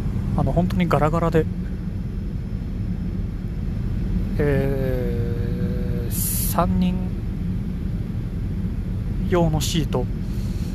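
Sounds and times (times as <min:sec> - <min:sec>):
airplane cabin roar during a flight to Dubai: 0:00.0 - 0:10.7
speech: 0:00.4 - 0:01.7, 0:04.4 - 0:05.0, 0:06.6 - 0:07.1, 0:09.3 - 0:10.2.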